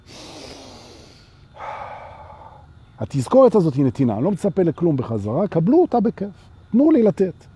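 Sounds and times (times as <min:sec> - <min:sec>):
person taking a slow breath and rushing exhale: 0:00.0 - 0:02.7
speech: 0:03.0 - 0:07.5.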